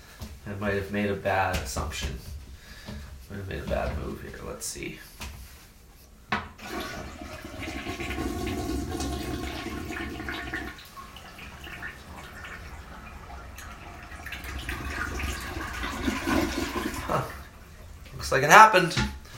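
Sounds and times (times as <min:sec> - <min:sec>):
speech: 0:00.5 - 0:02.3, 0:02.9 - 0:05.1, 0:18.4 - 0:19.2
toilet flushing with limited water: 0:06.6 - 0:18.6.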